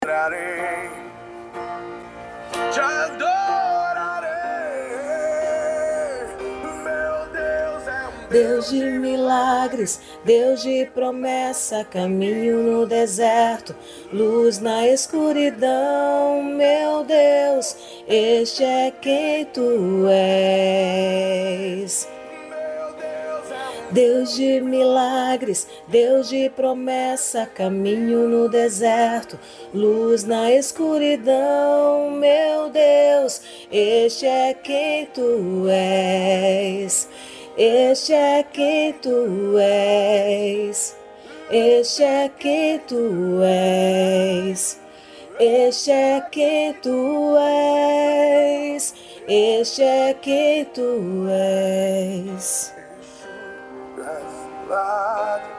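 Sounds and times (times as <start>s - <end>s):
contralto vocal: 2.5s - 55.5s.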